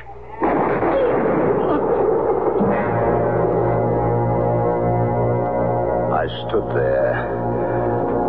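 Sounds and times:
single gunshot from a gun in a western-style drama: 0:00.4 - 0:03.3
sustained dramatic music chord: 0:02.6 - 0:08.2.

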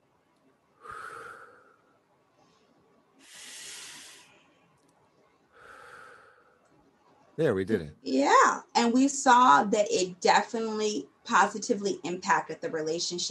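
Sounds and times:
slow deep centering breaths: 0:00.8 - 0:04.7, 0:05.5 - 0:06.6
speech: 0:07.4 - 0:13.2.

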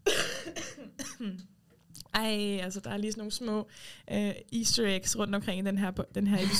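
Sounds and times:
person coughing harshly: 0:00.0 - 0:01.4
speech: 0:01.2 - 0:06.5.

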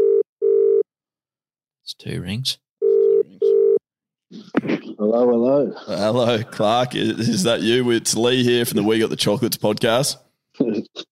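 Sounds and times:
outgoing phone call ringback tone: 0:00.0 - 0:00.8, 0:02.8 - 0:03.8
speech: 0:01.9 - 0:02.6, 0:04.3 - 0:11.1.

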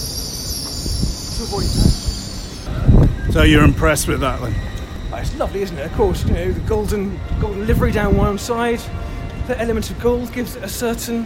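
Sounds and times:
steady high hiss: 0:00.0 - 0:06.0
train wheel screeches: 0:00.0 - 0:09.4
train brakes squealing: 0:00.0 - 0:09.8
train rolling in to stop at a platform: 0:00.0 - 0:11.2
speech: 0:01.4 - 0:02.2, 0:03.2 - 0:11.2.

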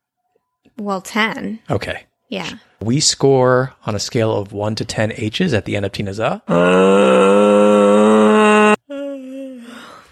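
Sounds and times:
speech: 0:00.8 - 0:07.9
person yawning loudly as an impersonation: 0:06.5 - 0:10.1.

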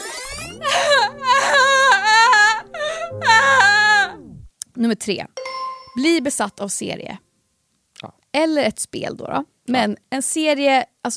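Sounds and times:
steady low sustained tone: 0:00.0 - 0:04.5
person crying and sobbing in wavering wails: 0:00.4 - 0:04.2
speech: 0:04.8 - 0:05.4, 0:06.0 - 0:07.3, 0:08.0 - 0:11.1.

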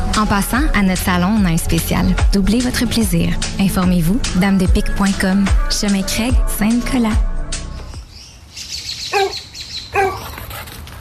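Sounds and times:
speech: 0:00.2 - 0:07.3
birds chirping faintly outdoors: 0:07.8 - 0:10.4
dog barking sharply outside the yard: 0:09.1 - 0:10.4.

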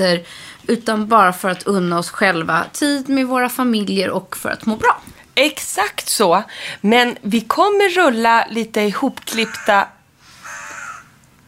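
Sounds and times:
speech: 0:00.0 - 0:10.0
magpie call outside the window: 0:09.3 - 0:11.2.

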